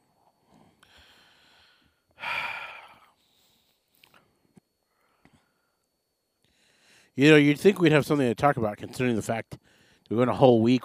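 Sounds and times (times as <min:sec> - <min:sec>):
quiet breathing: 0:00.0 - 0:07.2, 0:09.5 - 0:10.1
tired person yawning: 0:02.2 - 0:03.1
speech: 0:07.2 - 0:10.8.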